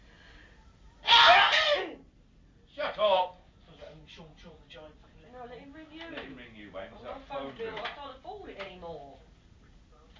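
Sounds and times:
loud sneeze: 0:01.0 - 0:02.0.

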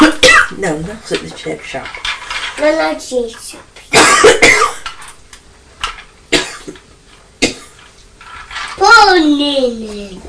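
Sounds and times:
speech: 0:00.6 - 0:04.8, 0:08.8 - 0:10.2
person with a cold coughing: 0:03.9 - 0:04.8, 0:06.3 - 0:06.8.

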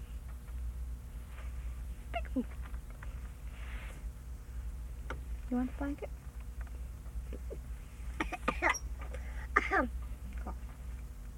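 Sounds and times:
steady low hum: 0:00.0 - 0:11.3
speech: 0:02.4 - 0:02.6, 0:05.5 - 0:06.2
short throaty coughs: 0:08.2 - 0:08.8, 0:09.6 - 0:09.9.

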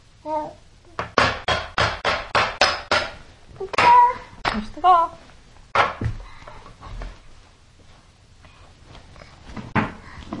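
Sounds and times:
toy hammer banging with a short ring: 0:01.0 - 0:04.6
speech: 0:04.8 - 0:05.2.

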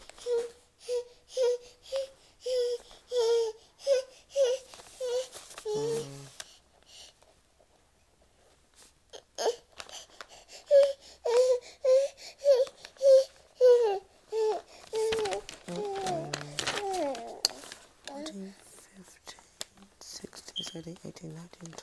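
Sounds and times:
baby fussing and crying: 0:00.2 - 0:06.2, 0:09.2 - 0:09.7, 0:10.7 - 0:17.6.

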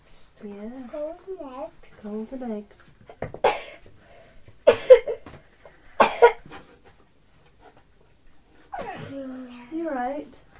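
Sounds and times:
speech: 0:00.4 - 0:03.0
child coughing in short raspy bursts: 0:03.4 - 0:03.8, 0:04.6 - 0:05.2, 0:06.0 - 0:06.4, 0:08.8 - 0:09.1.

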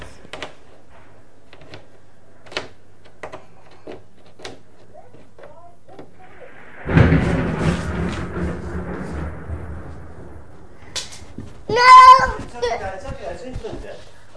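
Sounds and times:
deep thunder rumbling: 0:06.1 - 0:13.6.

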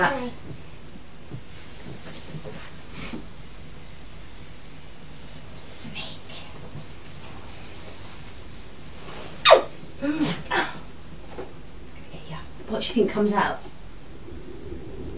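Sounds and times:
speech: 0:00.0 - 0:00.6, 0:13.0 - 0:13.7
child imitating a snake's hiss: 0:00.9 - 0:06.2, 0:07.5 - 0:10.4.

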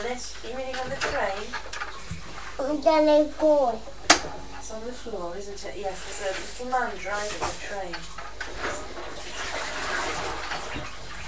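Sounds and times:
speech: 0:00.0 - 0:01.9, 0:02.6 - 0:09.1
water running from a tap for washing up: 0:07.8 - 0:11.2.

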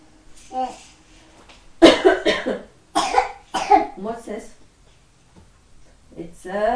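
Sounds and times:
speech: 0:00.5 - 0:00.9
person coughing: 0:01.8 - 0:04.0.

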